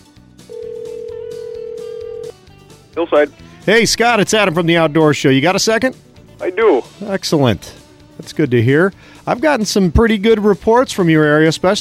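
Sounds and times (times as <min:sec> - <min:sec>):
steady mid-pitched telephone line tone: 0:00.5 - 0:02.4
speech: 0:03.0 - 0:11.8.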